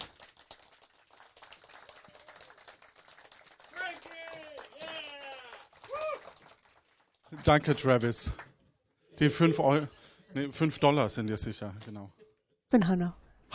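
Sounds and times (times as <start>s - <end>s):
small crowd applause: 0.0s - 8.5s
people whooping and cheering: 1.7s - 2.8s, 3.7s - 6.4s
speech: 7.3s - 8.5s, 9.2s - 13.5s.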